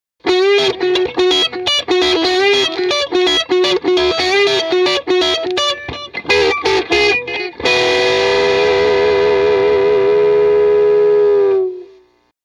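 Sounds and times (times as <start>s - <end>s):
tele midposition distorted through jtm45 playing country lick: 0.2s - 12.0s.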